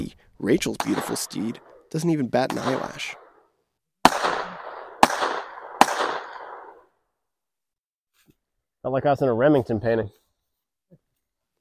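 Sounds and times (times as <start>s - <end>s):
speech: 0.0s - 3.2s, 8.8s - 10.2s
gunshots from a rider firing a full clip on horseback: 0.7s - 3.4s, 4.0s - 6.8s.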